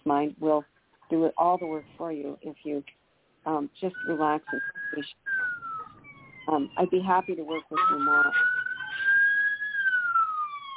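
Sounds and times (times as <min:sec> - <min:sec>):
speech: 0:00.1 - 0:05.2, 0:06.5 - 0:08.5
ambulance siren wailing: 0:03.9 - 0:10.7.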